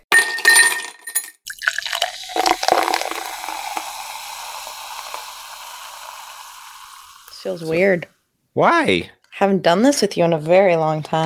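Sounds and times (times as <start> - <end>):
glassy clinks of beers being cracked open: 0.0 - 1.5
beer fizzing as beers are cracked open: 1.4 - 7.9
beer splashing: 1.5 - 7.6
speech: 7.4 - 11.2.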